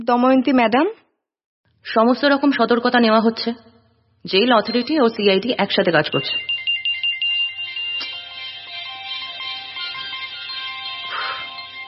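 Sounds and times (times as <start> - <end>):
speech: 0.0 - 1.0, 1.8 - 6.6
mobile phone ringtone with a bright electronic melody: 4.4 - 11.8.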